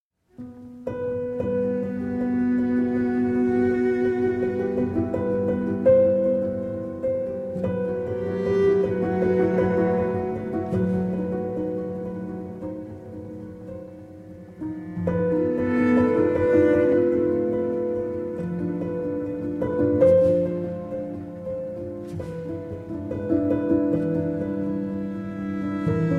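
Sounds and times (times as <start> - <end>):
piano, violin and cello prelude: 0.3 - 26.1.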